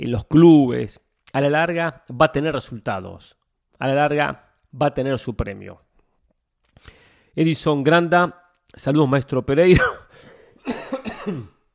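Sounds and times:
speech: 0.0 - 5.8, 6.8 - 10.0, 10.6 - 11.5
raspy breath: 6.8 - 7.4, 10.1 - 10.6
hoarse coughing fit: 9.7 - 11.7.

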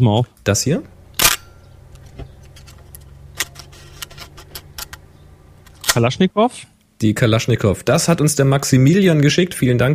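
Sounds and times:
speech: 0.0 - 1.0, 6.0 - 9.9
Pentax K1000 SE manual film camera clicks and ratchet snaps being handled: 1.2 - 1.5.

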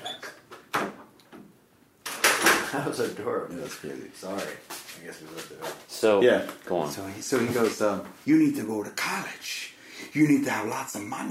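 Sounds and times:
door being pushed shut with a firm knock: 2.1 - 2.7
speech: 2.7 - 11.2.

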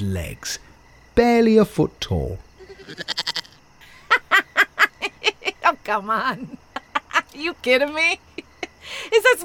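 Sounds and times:
speech: 0.0 - 3.4, 5.6 - 6.6, 7.3 - 9.4
goat bleating: 2.6 - 3.6
laughter: 3.8 - 5.6, 6.4 - 7.4.

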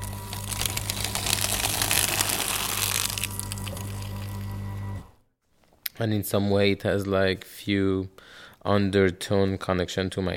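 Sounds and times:
paper crunching and crinkling in a shredder: 0.0 - 4.4
paper shredder motor hum: 0.0 - 5.2
speech: 6.0 - 10.3.

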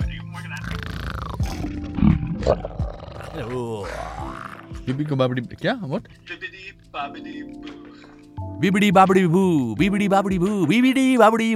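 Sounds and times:
speech: 2.4 - 2.8, 3.4 - 6.4, 7.0 - 7.8, 8.6 - 11.5
voice imitating a dragon roar: 2.5 - 4.7.

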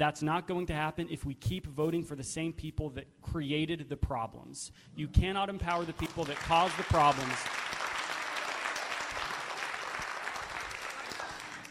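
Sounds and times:
speech: 0.0 - 7.8
audience applause at a political debate: 5.7 - 11.6.

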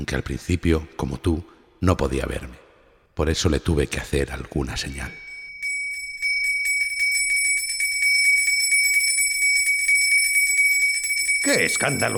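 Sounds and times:
speech: 0.0 - 2.6, 3.2 - 5.2, 11.4 - 12.1
bells ringing in a rapid peal: 4.9 - 12.1.

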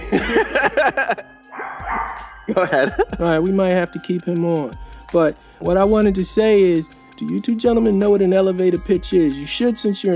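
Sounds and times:
laughter: 0.0 - 1.4, 2.5 - 3.2
speech: 0.2 - 1.3, 2.1 - 10.1
dog barking in sharp high-pitched yaps: 1.5 - 2.5.

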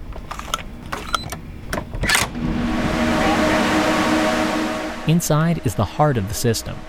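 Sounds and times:
sharp clicks and clunks: 0.0 - 2.4
computer cooling fans roaring in server room: 0.0 - 6.8
speech: 5.1 - 6.8.

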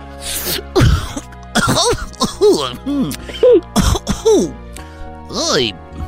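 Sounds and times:
speech: 0.4 - 0.8, 1.8 - 4.6, 5.3 - 5.8
person coughing after smoking marijuana: 0.4 - 4.6
throat clearing: 0.5 - 4.6.

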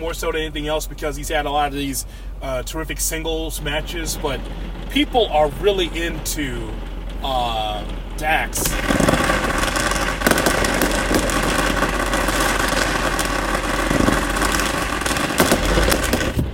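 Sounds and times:
speech: 0.0 - 9.0
steady loud rumble: 0.0 - 16.5
fireworks cracking and popping: 3.6 - 16.5.

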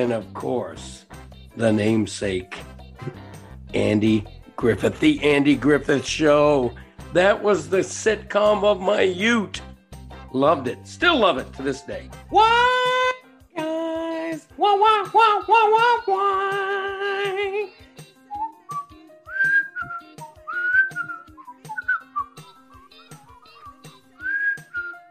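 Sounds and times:
speech: 0.0 - 9.7, 10.3 - 13.0, 14.6 - 17.8
two people whistling a tune together: 18.2 - 25.1.

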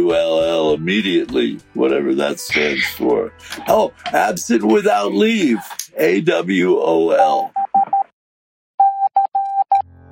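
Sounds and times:
speech: 0.0 - 7.6
high electronic Morse code beeps: 8.8 - 9.8.

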